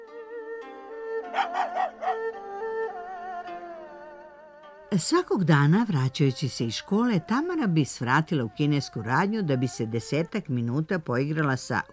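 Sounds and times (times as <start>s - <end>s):
small dog whining: 1.3s - 2.3s
speech: 1.3s - 2.4s, 4.9s - 11.9s.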